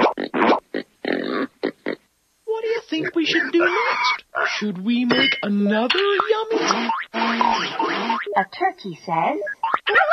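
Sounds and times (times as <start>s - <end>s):
pig oinking and grunting: 0.0s - 2.0s, 3.0s - 4.7s, 6.0s - 8.4s
speech: 3.0s - 9.5s.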